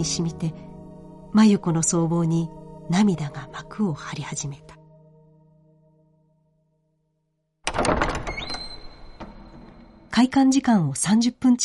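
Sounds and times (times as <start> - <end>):
speech: 0.0 - 0.7, 1.3 - 4.8, 10.2 - 11.6
heavy church door clunks and latch rattles: 7.6 - 10.0.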